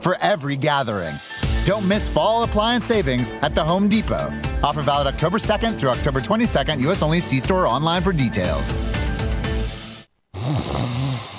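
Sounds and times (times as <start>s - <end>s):
speech: 0.0s - 9.0s
person snoring: 10.3s - 11.3s.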